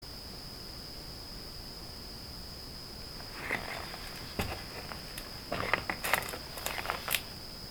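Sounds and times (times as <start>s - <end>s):
footsteps in a barn: 3.2s - 7.3s.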